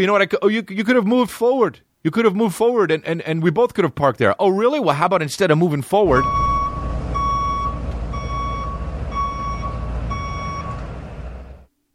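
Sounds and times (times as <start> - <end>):
speech: 0.0 - 6.5
armored truck reversing alarm beeps: 6.1 - 10.9
armored truck low engine rumble: 6.1 - 11.7.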